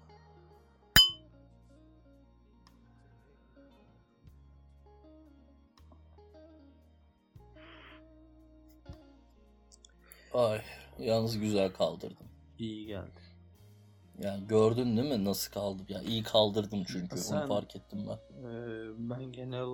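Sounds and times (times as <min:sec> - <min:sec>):
glasses clinking in a toast: 0:01.0 - 0:01.2
speech: 0:10.3 - 0:13.3, 0:14.2 - 0:19.7.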